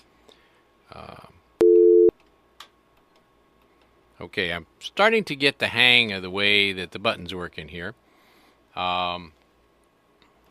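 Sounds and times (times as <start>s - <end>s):
telephone dial tone on a radio call-in line: 1.6s - 2.1s
speech: 4.2s - 8.0s, 8.8s - 9.4s.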